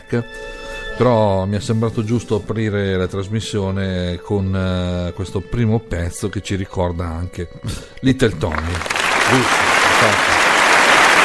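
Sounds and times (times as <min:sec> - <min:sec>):
speech: 0:00.1 - 0:10.3
audience applause in tribute to a singer: 0:08.4 - 0:11.2.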